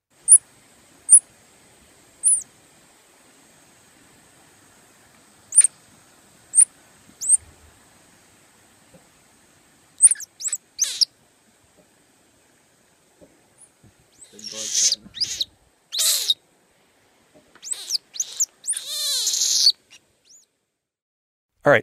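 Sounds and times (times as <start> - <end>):
saki monkey squeaking and squealing: 2.2 - 2.4, 6.6 - 7.4, 10.0 - 11.1, 14.2 - 16.4, 17.6 - 20.4.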